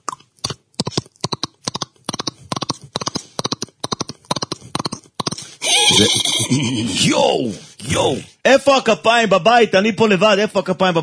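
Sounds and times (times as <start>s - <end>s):
man imitating a galloping horse with his mouth: 1.0s - 8.4s
speech: 6.0s - 11.0s.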